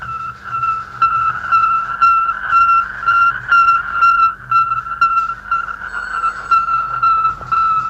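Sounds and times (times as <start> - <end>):
Earth satellite position signal high-pitched pulsing tone: 0.0 - 7.8.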